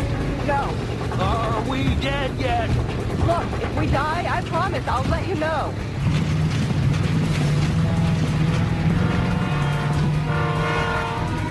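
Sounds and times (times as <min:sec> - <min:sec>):
train rolling past with a loud steady rumble: 0:00.0 - 0:11.4
speech: 0:00.5 - 0:06.2
sustained train horn blast: 0:07.6 - 0:11.4.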